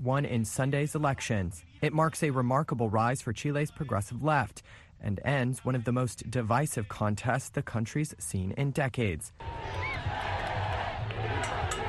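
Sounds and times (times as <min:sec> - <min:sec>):
speech: 0:00.0 - 0:10.3
crowds cheering in the streets after a presidential election victory: 0:09.4 - 0:11.8
supporters shouting in the streets: 0:09.4 - 0:11.8.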